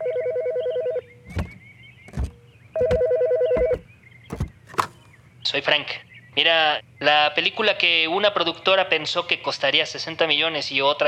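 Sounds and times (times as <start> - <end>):
telephone ringing in trilling electronic bursts: 0.0 - 1.1, 2.8 - 3.8
clunks and knocks: 1.3 - 5.1
speech: 5.5 - 11.0.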